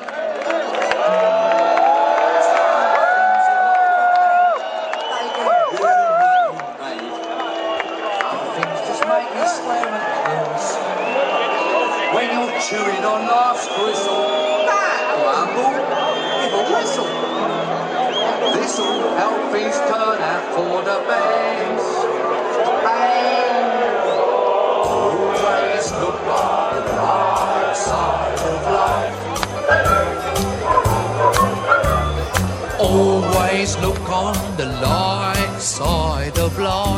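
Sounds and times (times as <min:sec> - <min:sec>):
concert crowd clapping: 0:00.0 - 0:19.1, 0:28.1 - 0:34.7
large concert crowd cheering, whooping and whistling: 0:00.0 - 0:36.8.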